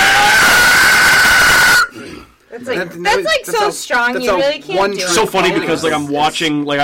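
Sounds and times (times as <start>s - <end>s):
voice imitating a harsh raspy monster scream: 0.0s - 2.2s
speech: 2.6s - 6.8s.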